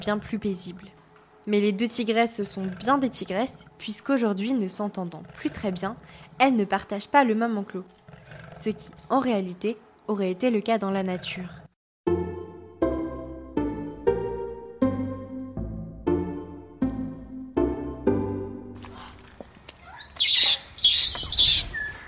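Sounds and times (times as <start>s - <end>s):
speech: 0.0s - 8.0s, 8.6s - 11.6s
plucked-sounding musical notes: 12.1s - 18.8s
parrots and parakeets squawking in an aviary: 19.8s - 22.0s.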